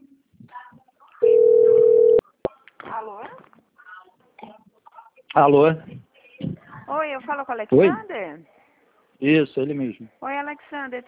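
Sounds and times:
telephone tone as a call is placed: 0:01.2 - 0:02.2
speech: 0:05.4 - 0:06.0, 0:06.9 - 0:08.5, 0:09.2 - 0:11.0.

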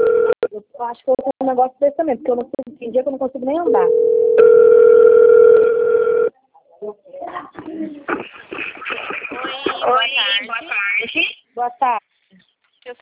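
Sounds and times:
steady ringback tone on an outgoing phone call: 0:00.0 - 0:00.4, 0:03.7 - 0:06.3
speech: 0:00.8 - 0:05.2, 0:06.8 - 0:12.1, 0:12.9 - 0:13.0
laughter: 0:07.6 - 0:11.4
voice over the phone line: 0:09.3 - 0:11.4.

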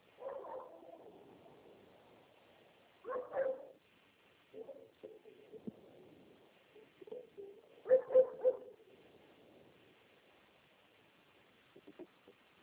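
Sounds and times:
dog barking: 0:00.2 - 0:01.1, 0:03.0 - 0:03.8, 0:04.5 - 0:05.3, 0:07.8 - 0:08.8.

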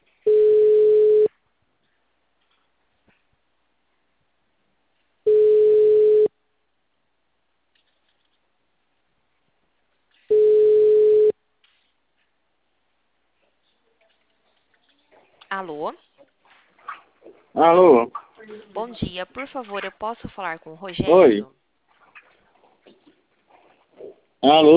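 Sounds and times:
telephone ringing tone while a call connects: 0:00.3 - 0:01.3, 0:05.3 - 0:06.3, 0:10.3 - 0:11.4
speech: 0:15.6 - 0:16.1, 0:17.6 - 0:21.6, 0:24.4 - 0:24.7.

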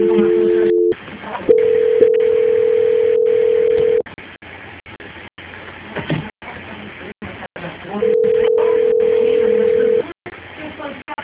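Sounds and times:
telephone line tones during call transfer: 0:00.0 - 0:04.0, 0:08.0 - 0:10.0.

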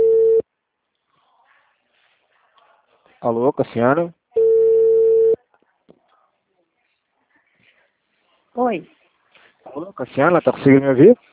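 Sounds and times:
telephone busy tone after a dropped call: 0:00.0 - 0:00.4, 0:04.4 - 0:05.4
speech: 0:03.2 - 0:04.2, 0:08.6 - 0:09.0, 0:09.7 - 0:11.2.

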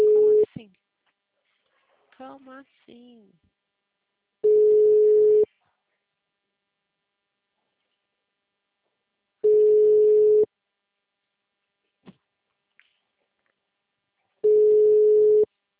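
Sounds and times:
low telephone ringing tone of a call going to voicemail: 0:00.0 - 0:00.5, 0:04.4 - 0:05.5, 0:09.4 - 0:10.5, 0:14.4 - 0:15.5
speech: 0:02.6 - 0:03.6.

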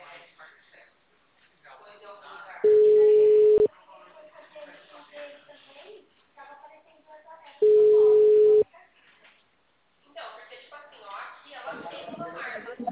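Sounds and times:
telephone ringing tone while placing a call: 0:02.7 - 0:03.7, 0:07.6 - 0:08.6.

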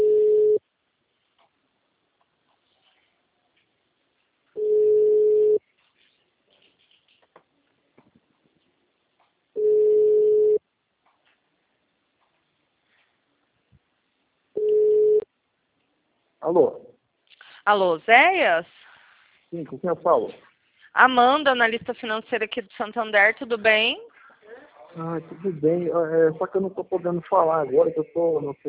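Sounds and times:
telephone ringback tone: 0:00.0 - 0:00.6, 0:04.6 - 0:05.6, 0:09.6 - 0:10.6, 0:14.6 - 0:15.2
speech: 0:16.5 - 0:16.8, 0:17.6 - 0:18.8, 0:19.5 - 0:28.6.

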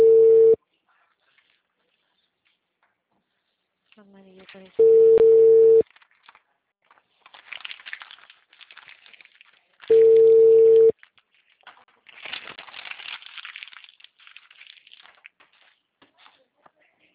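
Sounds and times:
telephone busy signal: 0:00.0 - 0:00.6, 0:04.8 - 0:05.8, 0:09.9 - 0:10.9
speech: 0:04.5 - 0:05.2.

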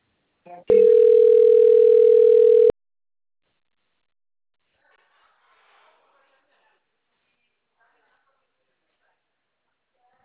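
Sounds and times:
telephone tone signalling an incoming call from the bank: 0:00.7 - 0:02.8.

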